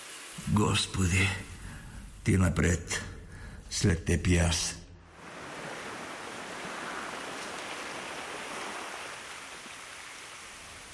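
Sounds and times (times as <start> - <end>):
speech: 0.4 - 1.5, 2.3 - 3.1, 3.7 - 4.8
sea surf breaking: 5.1 - 10.9.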